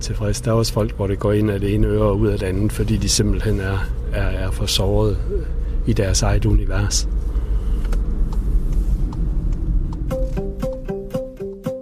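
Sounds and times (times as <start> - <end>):
speech: 0.0 - 7.2
car engine and road rumble on a road through a forest near Højbjerg: 0.0 - 11.1
short stepped melodic tones: 10.1 - 11.8.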